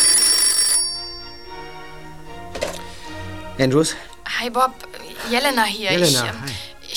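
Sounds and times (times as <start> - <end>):
telephone bell ringing: 0.0 - 2.0
speech: 3.6 - 6.9.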